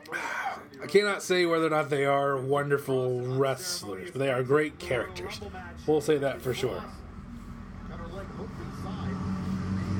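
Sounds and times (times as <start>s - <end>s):
speech: 0.9s - 7.0s
heavy truck rumbling past outside: 4.8s - 9.9s.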